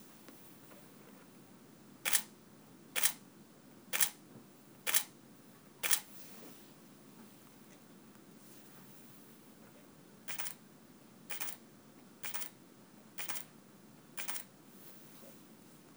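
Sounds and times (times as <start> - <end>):
Canon 5D Mark III camera shutter: 2.1 - 2.3, 3.0 - 3.2, 4.0 - 4.2, 4.9 - 5.1, 5.8 - 6.1, 10.3 - 10.6, 12.2 - 12.5, 13.2 - 13.5.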